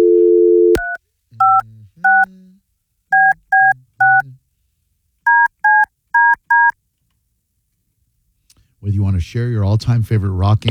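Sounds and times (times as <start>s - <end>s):
telephone dial tone: 0.0s - 2.3s, 3.2s - 4.2s, 5.3s - 6.7s
phone keypad dialing tones: 0.8s - 2.3s, 3.2s - 4.2s, 5.3s - 6.7s
speech: 9.2s - 10.6s.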